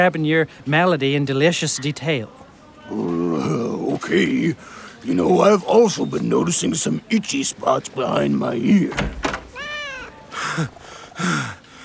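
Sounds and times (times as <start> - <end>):
speech: 0.0 - 9.3, 10.4 - 11.6
kitten meowing: 9.5 - 10.2.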